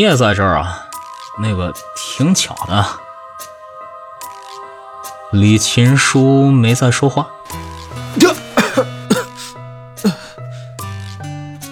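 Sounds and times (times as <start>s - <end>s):
speech: 0.0s - 0.8s, 1.4s - 3.5s, 5.3s - 8.9s
sustained tonal backdrop: 0.0s - 10.8s
person coughing up a mouthful of water: 8.2s - 10.3s.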